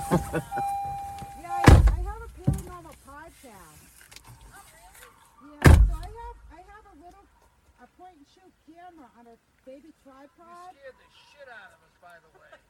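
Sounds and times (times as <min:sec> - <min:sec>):
laughter: 0:00.0 - 0:00.8, 0:12.2 - 0:12.6
car door opening and closing: 0:00.0 - 0:02.8, 0:05.6 - 0:06.2
speech: 0:00.1 - 0:00.8.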